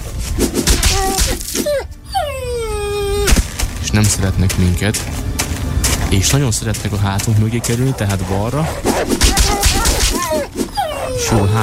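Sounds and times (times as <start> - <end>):
wolves in a video game mountain level yelping and howling: 0.7 - 3.5, 7.2 - 11.6
speech: 4.0 - 5.3, 6.1 - 9.5, 11.2 - 11.6.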